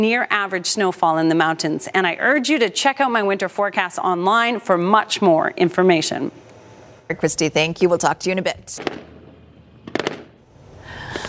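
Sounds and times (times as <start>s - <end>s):
speech: 0.0s - 6.4s, 7.1s - 9.2s
outdoor noise: 0.0s - 11.2s
fireworks exploding at sunrise: 8.6s - 11.2s.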